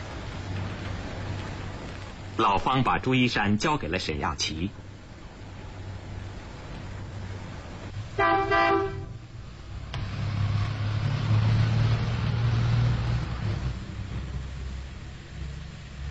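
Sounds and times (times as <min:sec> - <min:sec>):
car engine rumble as the car drives into a garage and reverses: 0:00.0 - 0:16.0
speech: 0:02.4 - 0:04.8
car horn honking: 0:08.2 - 0:09.2.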